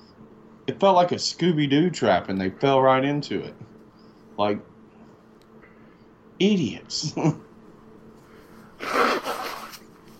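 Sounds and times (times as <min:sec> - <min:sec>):
speech: 0:00.7 - 0:03.7, 0:04.4 - 0:04.7, 0:06.4 - 0:07.5
person sneezing: 0:08.8 - 0:09.8.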